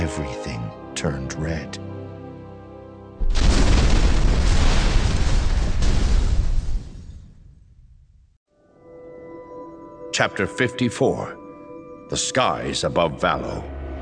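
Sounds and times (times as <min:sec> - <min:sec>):
speech: 0:00.0 - 0:01.9, 0:10.2 - 0:11.4, 0:12.1 - 0:13.7
bomb exploding on the ground: 0:03.2 - 0:08.1.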